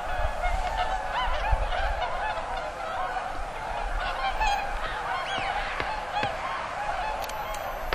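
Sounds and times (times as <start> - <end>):
swans honking: 0.0 - 7.9
sharp clicks: 7.2 - 7.7.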